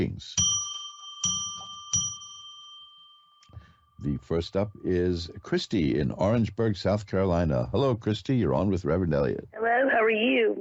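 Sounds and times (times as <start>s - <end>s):
speech: 0.0s - 0.4s, 4.0s - 10.6s
bell ringing with a clear sustained tone: 0.4s - 4.3s.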